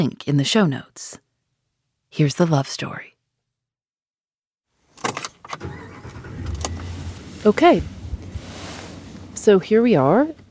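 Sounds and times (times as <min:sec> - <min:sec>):
speech: 0:00.0 - 0:01.2, 0:02.1 - 0:03.1, 0:07.4 - 0:08.0, 0:09.4 - 0:10.4
sharp clunks and rattles inside a large pickup truck cab: 0:05.0 - 0:08.4
large pickup truck engine rumbling while driving, heard from inside the cab: 0:05.0 - 0:10.5.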